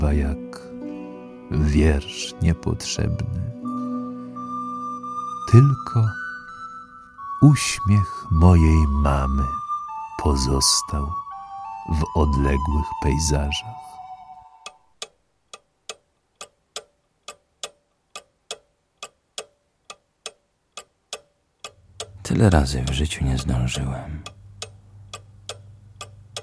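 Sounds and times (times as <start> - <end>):
speech: 0.2 - 0.5, 1.5 - 3.6, 5.5 - 6.2, 7.4 - 9.6, 10.2 - 11.2, 11.9 - 13.9, 22.3 - 24.4
clock ticking: 14.6 - 26.4.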